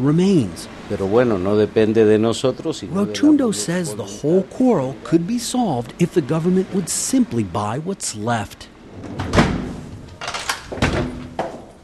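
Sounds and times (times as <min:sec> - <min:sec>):
speech: 0:00.0 - 0:09.3
heavy reinforced apartment door closing with a thud: 0:08.9 - 0:10.1, 0:10.7 - 0:11.6
apartment door lock clunking and scraping as it is worked: 0:08.9 - 0:11.8.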